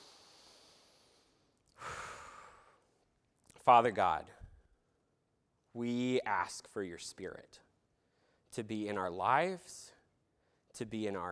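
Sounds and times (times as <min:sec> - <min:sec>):
deep breath drawn in during a church prayer gathering: 0:00.0 - 0:03.0
speech: 0:03.7 - 0:04.4, 0:05.8 - 0:07.6, 0:08.5 - 0:10.0, 0:10.8 - 0:11.2.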